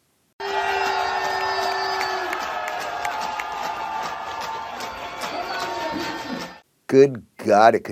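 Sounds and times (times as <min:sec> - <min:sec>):
crowd cheering and whooping at a bar: 0:00.4 - 0:06.6
people clapping: 0:00.4 - 0:06.6
speech: 0:06.9 - 0:07.8.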